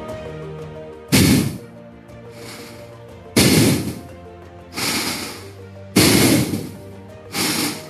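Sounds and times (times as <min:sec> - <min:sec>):
rapid forceful fire breaths through the nose with mouth closed: 0:02.3 - 0:04.0, 0:04.7 - 0:07.8.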